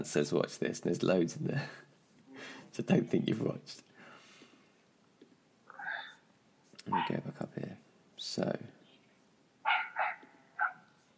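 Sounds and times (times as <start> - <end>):
speech: 0.0 - 3.9, 6.9 - 8.8
dogs barking: 6.9 - 7.2, 9.6 - 10.9.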